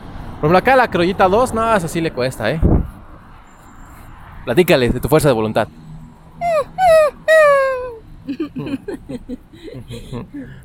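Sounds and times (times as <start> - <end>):
speech: 0.4 - 2.8, 4.4 - 5.8, 8.3 - 10.6
dog whining: 6.4 - 8.0
laughter: 6.5 - 10.4.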